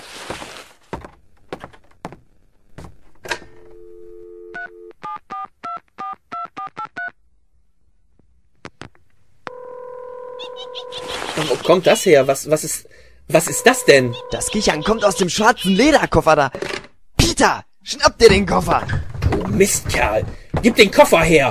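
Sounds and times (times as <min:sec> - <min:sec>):
long telephone tone: 0:03.6 - 0:05.0, 0:09.5 - 0:11.0, 0:13.4 - 0:15.2
speech: 0:11.7 - 0:21.4
steady telephone line tone: 0:13.3 - 0:15.5
touch-tone keypad beeps dialing a taxi: 0:13.5 - 0:15.2.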